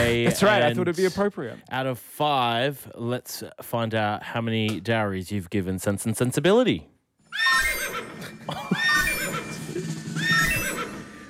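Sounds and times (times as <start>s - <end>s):
speech: 0.1s - 7.7s, 8.5s - 8.8s
horse giving shrill quavering whinnies: 7.3s - 11.2s.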